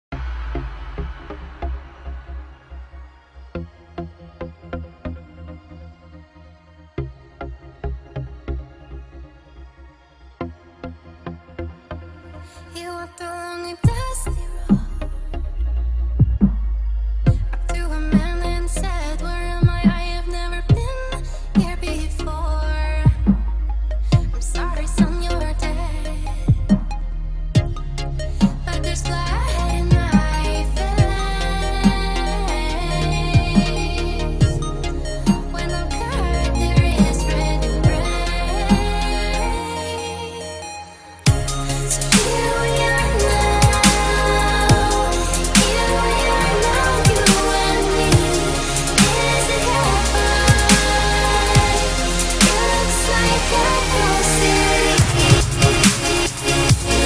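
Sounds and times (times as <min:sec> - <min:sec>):
trance beat: 0:00.0 - 0:05.2, 0:13.8 - 0:57.0
female vocals: 0:12.6 - 0:15.3, 0:17.4 - 0:23.5, 0:24.1 - 0:26.9, 0:28.6 - 0:57.0.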